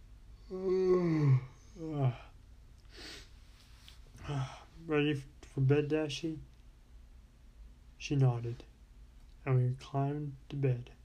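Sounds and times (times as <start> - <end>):
person yawning aloud: 0.4 - 2.3
speech: 0.5 - 0.7, 4.9 - 6.5, 8.1 - 8.7, 9.4 - 11.0.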